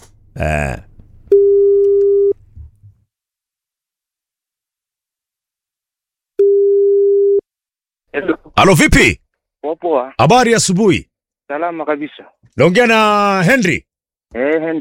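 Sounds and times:
speech: 0.4s - 0.9s, 8.6s - 14.7s
telephone ringback tone on an outgoing call: 1.3s - 2.4s, 6.4s - 7.4s.

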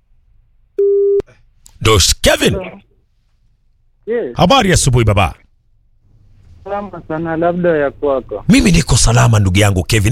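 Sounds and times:
steady electronic telephone tone on a call: 0.8s - 1.3s
speech: 1.8s - 2.8s, 4.1s - 5.4s, 6.6s - 10.0s.

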